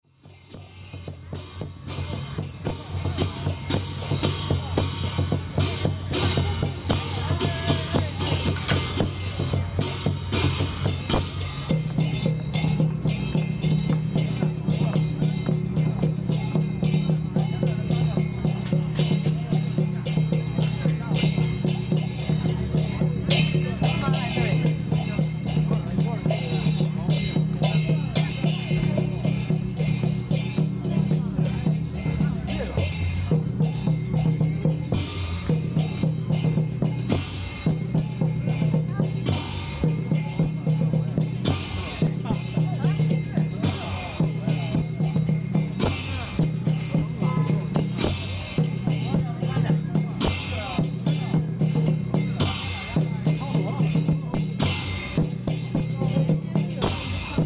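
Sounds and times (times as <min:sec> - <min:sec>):
fan dancing drums: 0:00.0 - 0:57.4.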